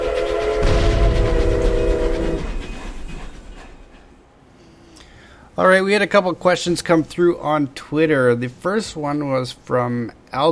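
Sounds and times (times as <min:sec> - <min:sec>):
sustained horn-like tone from a tram: 0:00.0 - 0:03.4
tram rolling past with a heavy low rumble: 0:00.0 - 0:07.5
speech: 0:05.6 - 0:10.5.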